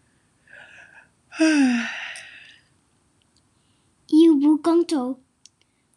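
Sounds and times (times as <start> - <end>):
person yawning: 1.3 - 2.5
speech: 1.4 - 2.0, 4.6 - 5.2.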